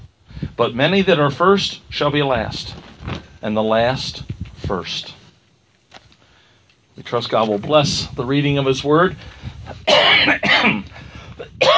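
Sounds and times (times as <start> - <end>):
speech: 0.6 - 5.2, 7.0 - 10.8
person coughing harshly into a microphone during a church scripture reading: 9.8 - 11.7.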